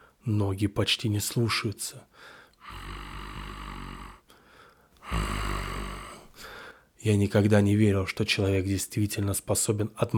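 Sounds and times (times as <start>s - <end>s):
speech: 0.2s - 2.9s, 7.0s - 10.1s
hoarse growling breaths from someone large: 2.6s - 6.6s.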